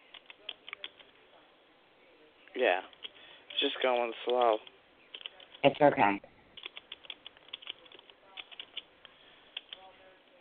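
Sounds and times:
typing on a computer keyboard: 0.0s - 1.1s, 2.9s - 5.6s, 6.6s - 8.9s, 9.5s - 9.9s
speech: 2.6s - 3.0s, 3.6s - 4.7s, 5.6s - 6.3s.

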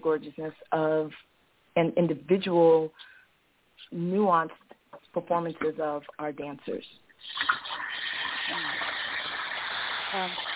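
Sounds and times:
speech: 0.0s - 3.1s, 3.9s - 7.6s, 10.1s - 10.5s
running water: 7.2s - 10.5s.

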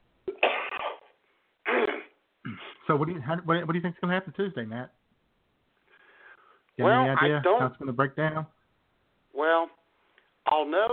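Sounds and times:
person coughing: 0.3s - 1.1s, 1.7s - 2.8s
person clearing their throat: 1.7s - 2.8s
speech: 2.9s - 5.0s, 6.8s - 8.6s, 10.7s - 10.9s.

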